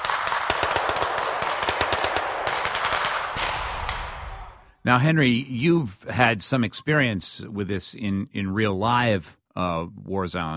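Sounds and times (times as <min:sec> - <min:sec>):
automatic weapons gunfire in a video game: 0:00.0 - 0:04.2
speech: 0:04.8 - 0:10.5.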